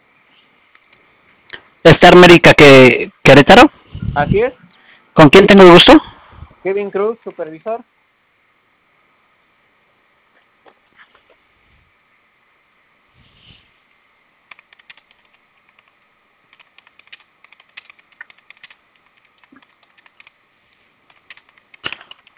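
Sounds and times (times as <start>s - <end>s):
speech: 1.8s - 4.6s, 5.2s - 8.0s
alarm keypad buttons pressed over a phone line: 14.5s - 15.9s, 16.5s - 20.3s, 21.1s - 22.3s.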